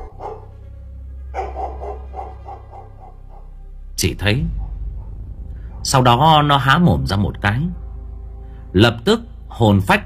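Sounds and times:
dog barking at night: 0:00.0 - 0:00.6, 0:01.3 - 0:03.5
low hum: 0:00.0 - 0:09.5
speech: 0:04.0 - 0:04.6, 0:05.8 - 0:07.8, 0:08.7 - 0:10.0.

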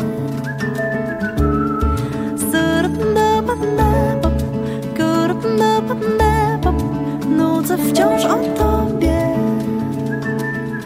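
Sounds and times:
Polish pop song musical backing: 0:00.0 - 0:10.8
person whistling a tune in a pop song: 0:00.1 - 0:03.0, 0:08.0 - 0:10.8.

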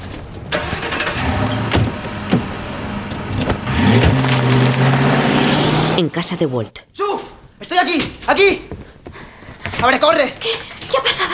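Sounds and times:
car engine starting and driving away: 0:00.5 - 0:06.2
speech: 0:06.1 - 0:08.8, 0:09.8 - 0:11.3.

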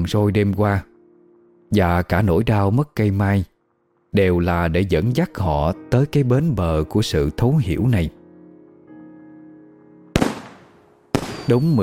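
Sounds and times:
speech: 0:00.0 - 0:00.9, 0:01.7 - 0:03.5, 0:04.1 - 0:08.2, 0:11.5 - 0:11.8
fireworks exploding over a rural riverside district: 0:10.2 - 0:11.8.

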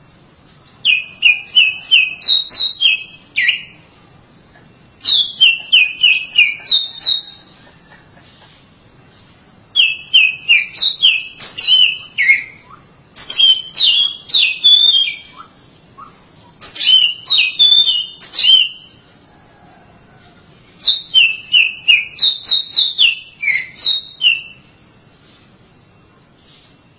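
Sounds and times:
Oriental magpie-robin song: 0:00.7 - 0:03.9, 0:05.0 - 0:07.6, 0:09.7 - 0:19.0, 0:20.7 - 0:25.4, 0:26.4 - 0:26.9.

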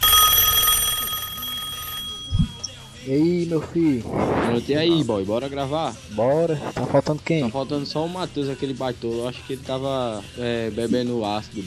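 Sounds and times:
telephone ring tone during an outgoing call: 0:00.0 - 0:02.9
speech: 0:03.1 - 0:11.6.

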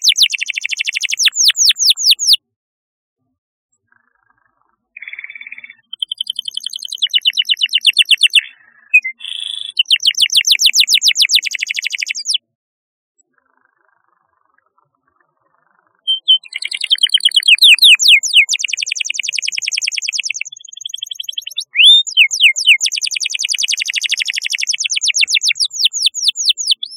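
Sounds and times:
canary singing: 0:00.0 - 0:02.4, 0:05.0 - 0:12.4, 0:16.0 - 0:26.9.

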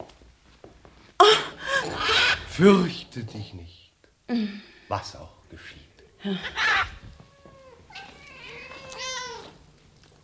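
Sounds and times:
several cats meowing as a radio drama sound effect: 0:01.7 - 0:02.5, 0:06.4 - 0:09.7
speech: 0:02.6 - 0:07.0.

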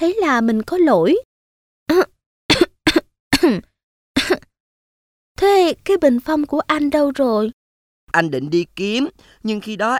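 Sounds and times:
speech: 0:00.0 - 0:01.3, 0:01.9 - 0:02.1, 0:03.4 - 0:03.7, 0:05.4 - 0:09.9
woman giving feigned coughs: 0:01.9 - 0:04.6.

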